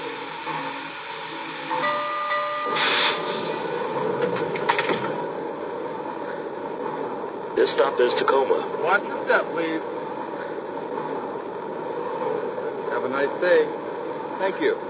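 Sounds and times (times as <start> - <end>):
thin high train brake squeals: 0.0 - 3.9
passenger train arriving at Tacoma station on track one: 0.0 - 14.8
speech: 7.6 - 10.0, 13.1 - 13.8, 14.4 - 14.8.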